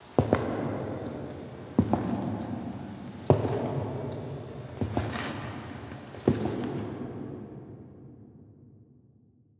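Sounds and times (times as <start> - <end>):
ominous footsteps: 0.1 - 7.0.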